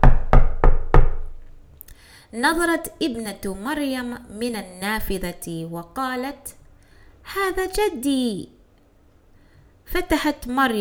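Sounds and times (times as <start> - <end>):
knocking on a door: 0.0 - 1.4
speech: 2.3 - 6.6, 7.3 - 8.6, 9.9 - 10.8.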